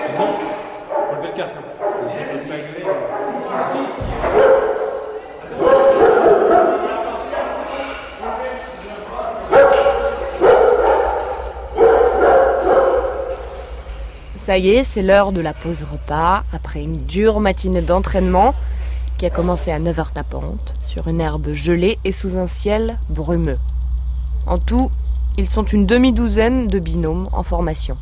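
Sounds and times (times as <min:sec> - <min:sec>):
kennel dogs barking and yipping awaiting food: 0:00.8 - 0:08.8, 0:09.4 - 0:14.2
speech: 0:01.2 - 0:04.4, 0:14.5 - 0:23.7, 0:24.5 - 0:28.0
low steady hum: 0:08.4 - 0:28.0.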